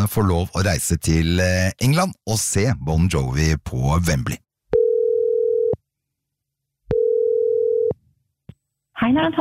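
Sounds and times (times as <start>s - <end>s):
speech: 0.0s - 4.4s, 9.0s - 9.4s
telephone ringback tone while calling a listener: 4.8s - 5.8s, 6.9s - 7.9s.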